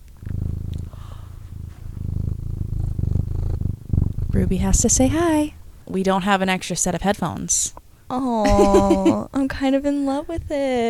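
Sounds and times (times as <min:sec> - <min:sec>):
cat purring: 0:00.0 - 0:06.2
speech: 0:04.4 - 0:10.8
laughter: 0:08.5 - 0:09.2.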